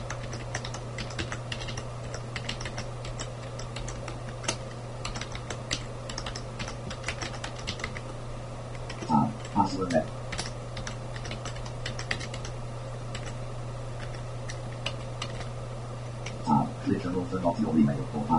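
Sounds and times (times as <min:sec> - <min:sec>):
typing sign-in details on a computer keyboard: 0:00.0 - 0:08.0, 0:08.8 - 0:13.4, 0:14.0 - 0:15.5
low constant hum: 0:00.0 - 0:18.3
brief bursts of speech: 0:09.1 - 0:10.1, 0:16.4 - 0:18.3.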